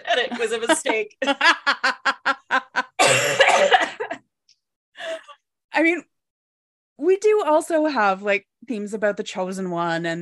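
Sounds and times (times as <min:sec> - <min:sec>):
laughter: 0:00.0 - 0:03.0
speech: 0:00.2 - 0:01.9, 0:07.5 - 0:10.2
person coughing after choking on mashed potato: 0:03.0 - 0:04.2.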